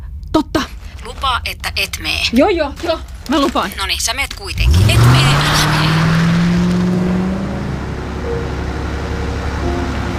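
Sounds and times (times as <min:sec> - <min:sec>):
car engine humming while driving: 0:00.0 - 0:10.1
speech: 0:00.4 - 0:06.1
faint road noise: 0:00.7 - 0:10.1.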